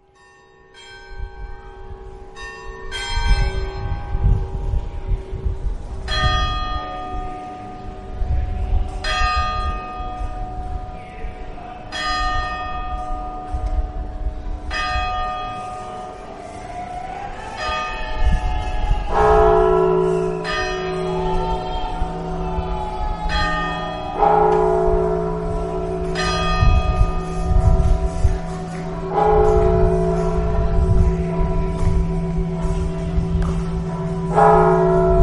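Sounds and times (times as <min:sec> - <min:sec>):
church bells pealing from a parish belfry: 0:00.0 - 0:35.2.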